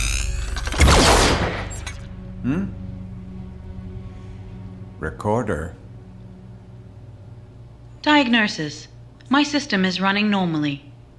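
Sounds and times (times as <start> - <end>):
cannon blast fired at a robot as a test: 0.7 - 1.9
speech: 2.4 - 2.8, 5.0 - 5.8, 8.0 - 10.9.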